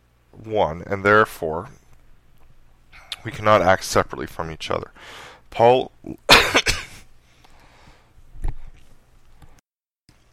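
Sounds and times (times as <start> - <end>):
speech: 0.4 - 1.8, 3.2 - 6.7
person coughing: 6.3 - 7.1.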